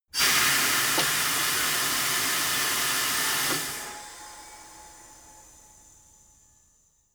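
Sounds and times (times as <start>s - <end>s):
tire changing machine hydraulics: 0.2s - 5.8s.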